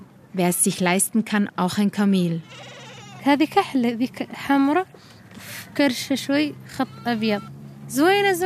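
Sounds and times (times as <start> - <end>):
speech: 0.4 - 8.4
goats bleating at a Sahrawi camp: 2.4 - 3.4.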